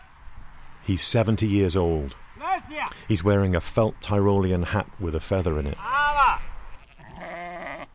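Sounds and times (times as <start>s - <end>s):
speech: 0.8s - 6.0s
sheep bleating: 5.8s - 7.9s.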